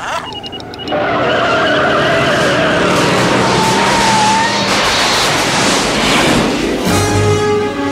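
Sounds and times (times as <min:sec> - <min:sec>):
car engine whining while accelerating: 0:00.0 - 0:06.0
car tires screeching and skidding: 0:00.0 - 0:06.8.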